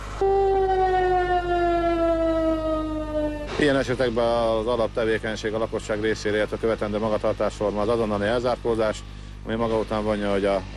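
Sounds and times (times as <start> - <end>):
civil defense warning siren in Batta wailing for a disaster-protection drill: 0.0 - 3.7
speech: 3.6 - 10.7.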